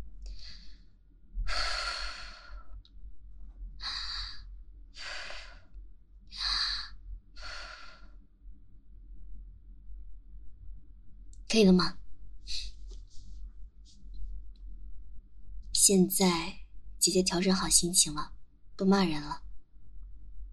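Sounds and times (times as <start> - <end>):
woman taking slow deep breaths: 0.3 - 2.8, 3.8 - 8.2
speech: 11.5 - 12.0, 15.9 - 19.5.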